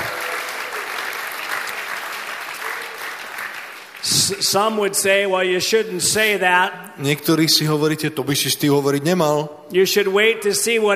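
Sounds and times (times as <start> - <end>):
audience clapping: 0.0 - 4.8
speech: 4.0 - 10.9.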